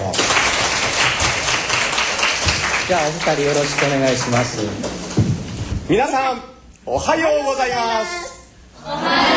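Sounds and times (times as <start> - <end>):
applause from a sizable audience: 0.0 - 5.0
speech: 2.9 - 5.1, 5.9 - 9.2.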